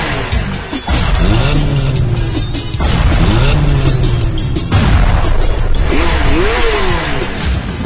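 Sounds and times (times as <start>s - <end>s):
car engine revving hard as it accelerates: 0.0s - 7.8s.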